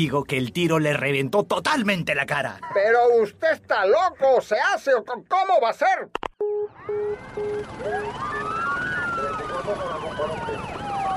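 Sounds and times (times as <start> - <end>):
speech: 0.0 - 6.3, 9.7 - 10.6
police car sirens wailing: 6.4 - 11.1.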